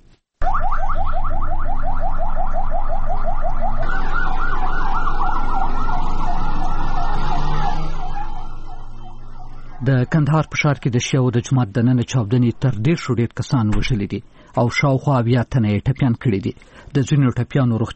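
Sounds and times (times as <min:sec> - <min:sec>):
ambulance sirens in Kandahar: 0:00.4 - 0:11.2
speech: 0:09.9 - 0:17.9.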